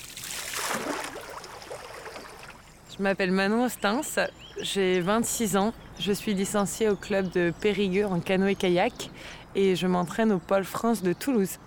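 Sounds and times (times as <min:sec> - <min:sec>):
gentle water lapping: 0:00.0 - 0:02.9
speech: 0:03.0 - 0:11.6.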